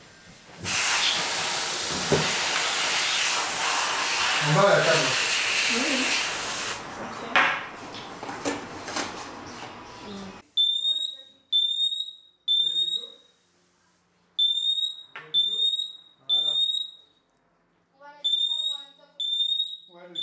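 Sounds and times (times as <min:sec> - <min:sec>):
aerosol smoke detector test spray hissing: 0:00.6 - 0:06.9
standalone optical smoke detector siren beeping: 0:10.4 - 0:13.4, 0:14.4 - 0:17.2, 0:18.2 - 0:20.2.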